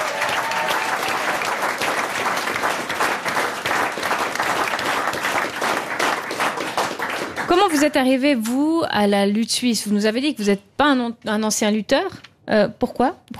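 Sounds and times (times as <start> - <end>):
large audience applauding: 0.0 - 8.0
speech: 7.6 - 13.3.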